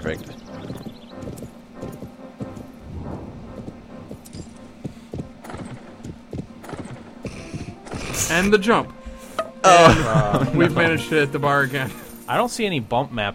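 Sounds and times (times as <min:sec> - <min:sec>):
speech: 0:00.0 - 0:00.4, 0:08.3 - 0:09.0, 0:09.6 - 0:13.3
horse hooves trotting in a horse-riding video game: 0:00.0 - 0:08.2
faint jingle of horse tack: 0:04.2 - 0:04.7, 0:11.5 - 0:12.5
laughter: 0:09.7 - 0:11.1.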